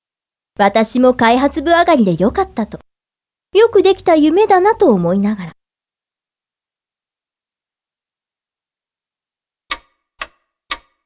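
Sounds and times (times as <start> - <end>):
speech: 0.6 - 2.9, 3.5 - 5.5
clock ticking: 9.7 - 11.0.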